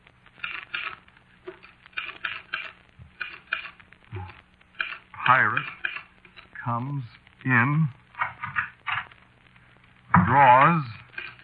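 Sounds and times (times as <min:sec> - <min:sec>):
slow typing on a keyboard with one hand: 0:00.4 - 0:05.0
speech: 0:05.3 - 0:05.8, 0:06.6 - 0:08.0, 0:10.3 - 0:11.0.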